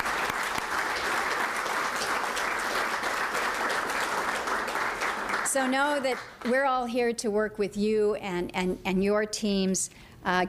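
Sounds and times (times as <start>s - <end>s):
audience applause: 0.0s - 6.5s
speech: 5.6s - 10.4s.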